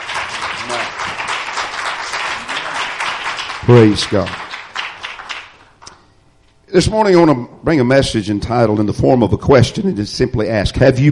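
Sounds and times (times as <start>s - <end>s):
large audience clapping hands in praise: 0.0s - 6.1s
speech: 3.7s - 4.4s, 6.7s - 11.0s.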